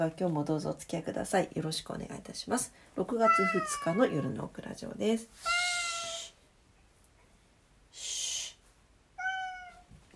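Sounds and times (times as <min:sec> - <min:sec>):
speech: 0:00.0 - 0:05.7
cat meowing loudly at night: 0:03.2 - 0:04.4, 0:05.4 - 0:06.3, 0:09.2 - 0:09.9.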